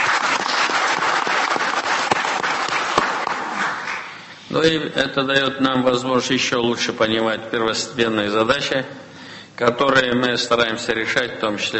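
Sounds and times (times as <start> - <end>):
audience applause: 0.0 - 4.2
speech: 4.5 - 9.0, 9.6 - 11.7.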